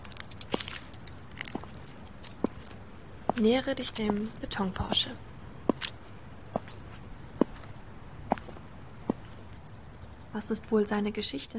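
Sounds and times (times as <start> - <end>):
footsteps on a hard surface: 0.4 - 5.1, 5.7 - 9.4
speech: 3.4 - 5.3, 10.4 - 11.5.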